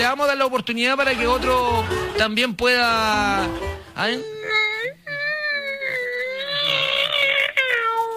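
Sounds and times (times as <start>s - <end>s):
speech: 0.1s - 4.3s
person imitating a cat meowing: 4.0s - 8.1s.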